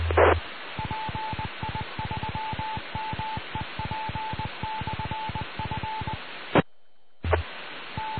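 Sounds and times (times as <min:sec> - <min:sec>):
rapid electronic beeps from an amateur radio repeater: 0:00.0 - 0:06.2
steady hiss of radio static: 0:00.0 - 0:08.1.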